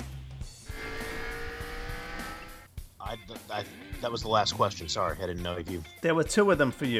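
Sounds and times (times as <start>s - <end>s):
tire squeal: 0.0s - 2.7s
race car engine roaring as it accelerates hard: 0.0s - 3.3s
speech: 3.1s - 6.9s.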